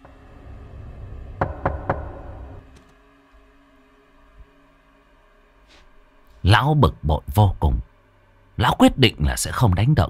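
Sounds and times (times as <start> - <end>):
low hum: 0.0 - 10.0
knocking on a door: 1.4 - 2.5
speech: 6.5 - 7.9, 8.6 - 10.0.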